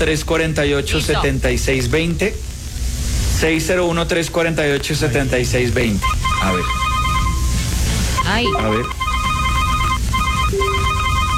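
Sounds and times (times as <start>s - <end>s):
speech: 0.0s - 2.5s, 3.4s - 6.8s, 8.3s - 9.0s
telephone ringing with electronic ringtone: 6.0s - 7.6s, 8.2s - 11.3s.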